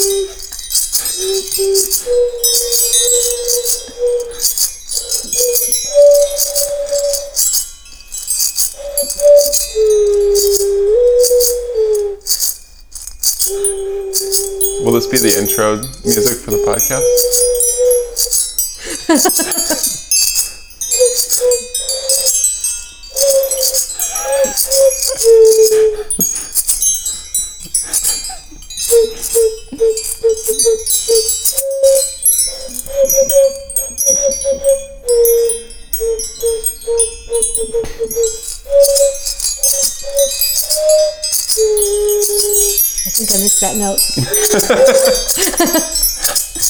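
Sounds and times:
chimes ringing: 0.0 - 46.6
shaker rattling: 0.0 - 46.6
speech: 15.0 - 17.5, 19.1 - 20.0
laughter: 18.8 - 20.0, 24.0 - 26.5, 44.2 - 46.6.

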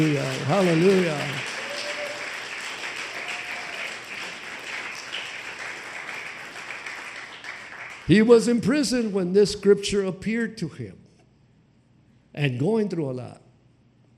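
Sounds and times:
speech: 0.0 - 1.5, 8.1 - 11.0, 12.4 - 13.4
audience clapping as an offering: 0.0 - 8.6
faint voices and whoops: 1.5 - 2.4, 3.1 - 4.0.

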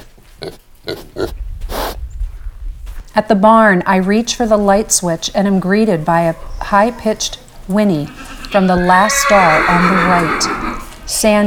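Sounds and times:
speech: 0.4 - 1.4, 3.2 - 11.4
pig grunting softly while walking through snow: 5.8 - 11.2
breathy rush: 5.8 - 11.4.

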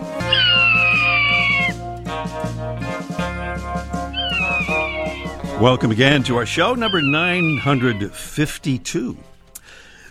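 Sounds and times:
Swainson's hawk screaming: 0.0 - 1.9, 4.1 - 9.0
musical backing: 0.0 - 9.7
speech: 5.6 - 9.3.

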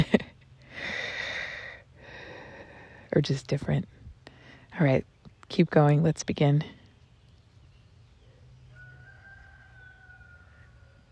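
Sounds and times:
speech: 3.1 - 4.0, 4.8 - 6.8
rooster crowing: 8.6 - 11.0.

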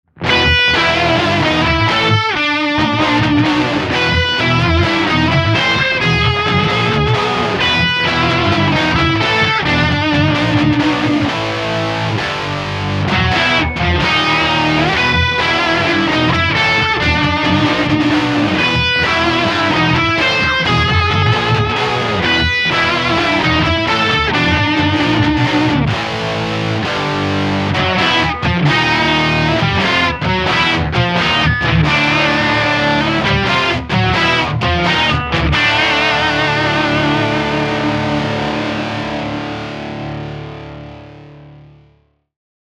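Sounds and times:
heavy guitar: 0.0 - 42.1.

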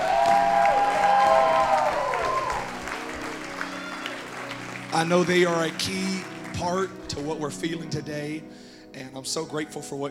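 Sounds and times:
audience applause and cheering for singers and musicians: 0.0 - 7.0
speech: 5.0 - 10.0.

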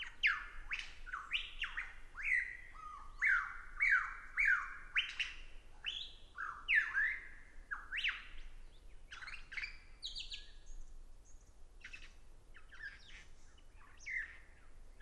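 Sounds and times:
lyrebird calling during its courtship display: 0.0 - 8.1.

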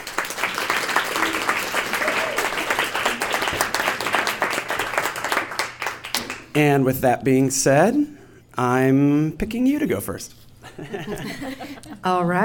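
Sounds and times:
audience applause for panelists: 0.0 - 6.6
speech: 6.6 - 12.4
laughter: 10.6 - 12.2.

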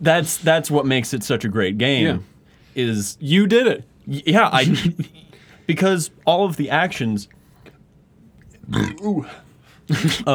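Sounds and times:
speech: 0.0 - 7.4, 8.7 - 10.3
short throaty burp: 8.6 - 9.1.

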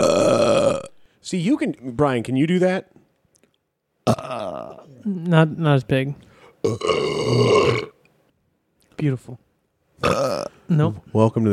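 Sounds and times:
loud burp: 0.0 - 1.0, 4.0 - 5.0, 6.6 - 8.0, 10.0 - 10.7
speech: 1.3 - 3.0, 4.1 - 7.9, 9.0 - 9.4, 10.0 - 11.5.

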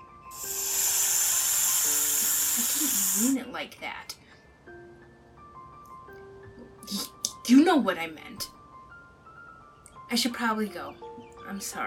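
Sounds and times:
snake hissing: 0.3 - 3.4
speech: 3.2 - 4.2, 6.9 - 8.5, 10.1 - 11.8.

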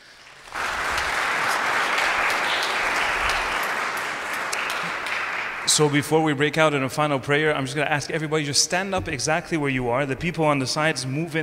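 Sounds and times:
audience applauding in a church: 0.0 - 6.0
speech: 5.8 - 11.4.

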